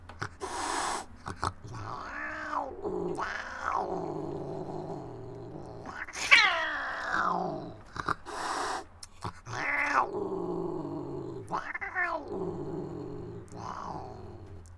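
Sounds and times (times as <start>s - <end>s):
angry cat hissing: 0.1s - 14.7s.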